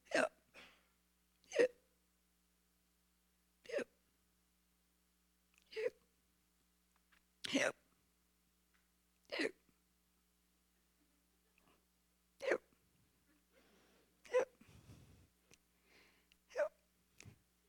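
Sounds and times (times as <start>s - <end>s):
whale hiccups heard from inside its belly: 0.0s - 0.4s, 1.5s - 1.8s, 3.7s - 3.9s, 7.4s - 7.8s, 12.4s - 12.7s, 14.3s - 14.6s, 16.5s - 16.8s
faint rustle: 13.5s - 15.4s.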